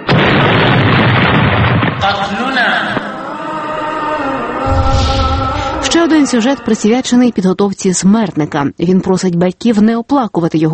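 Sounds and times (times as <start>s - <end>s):
explosion hitting a military convoy: 0.0s - 2.4s, 4.6s - 6.1s
rumbling debris: 0.0s - 2.4s, 4.7s - 6.0s
raised voices: 3.0s - 7.7s
speech: 6.0s - 10.7s.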